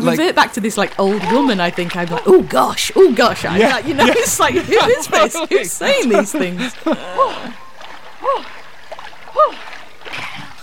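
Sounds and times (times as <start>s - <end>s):
speech: 0.0s - 7.6s, 8.3s - 8.6s
water splashing and churning: 0.0s - 10.6s
laughter: 1.1s - 7.6s
woman shrieking high-pitched: 6.9s - 7.6s, 8.2s - 8.5s, 9.4s - 9.6s.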